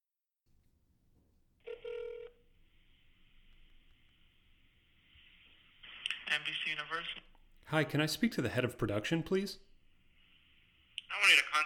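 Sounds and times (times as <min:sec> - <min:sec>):
faint static: 0:00.0 - 0:11.6
brief electronic phone tone: 0:01.7 - 0:02.4
steady hiss of telephone line noise: 0:02.5 - 0:11.6
speech: 0:06.4 - 0:09.7.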